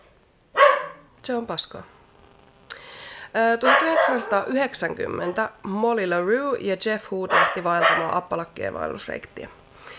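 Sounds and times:
dog barking indoors: 0.5s - 1.1s, 3.6s - 4.6s, 7.3s - 8.2s
speech: 1.3s - 2.0s, 3.3s - 9.6s.

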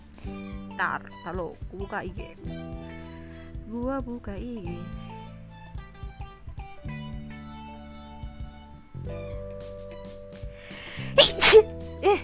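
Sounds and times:
quiet tonal background: 0.0s - 12.2s
speech: 0.8s - 3.0s, 3.7s - 5.1s
person sneezing: 10.9s - 12.2s.

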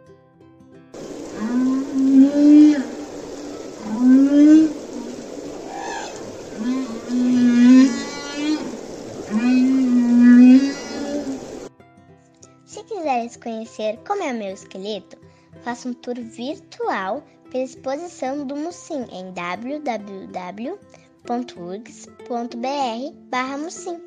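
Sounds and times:
male whale singing long moaning calls: 1.0s - 11.7s
speech: 13.8s - 24.0s.

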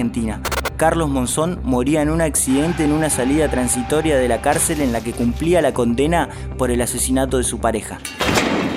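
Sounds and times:
speech: 0.0s - 8.6s
helicopter rotor beating in a rapid thudding pulse: 0.5s - 0.7s
high helicopter engine whine: 0.5s - 0.7s.

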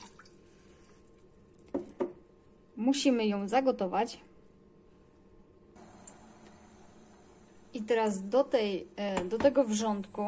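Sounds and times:
water poured from a glass splashing into a pot: 0.0s - 0.4s
speech: 2.8s - 4.3s, 7.9s - 10.2s.

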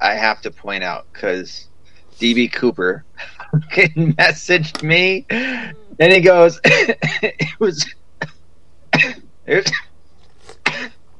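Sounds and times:
laughter: 0.0s - 1.6s, 2.2s - 7.9s
speech: 0.1s - 8.0s, 9.0s - 9.9s
man coughing: 2.3s - 4.5s, 5.1s - 7.9s, 9.0s - 9.8s, 10.5s - 10.9s.

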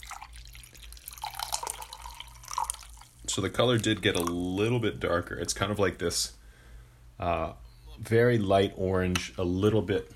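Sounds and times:
brewed liquid pouring after steeping: 0.0s - 4.7s
faint low hum: 0.0s - 10.1s
speech: 3.4s - 6.4s, 7.2s - 10.1s.

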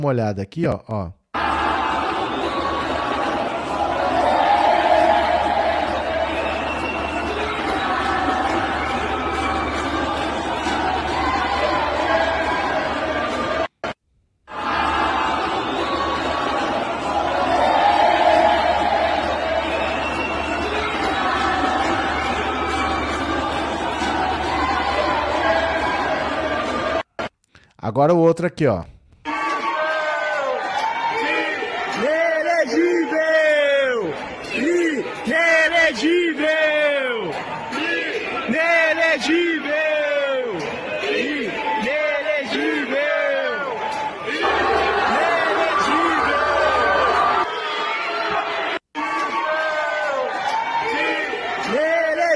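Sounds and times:
speech: 0.0s - 1.5s, 28.0s - 28.9s
large crowd chanting and shouting in unison: 1.3s - 27.3s, 29.2s - 52.3s.

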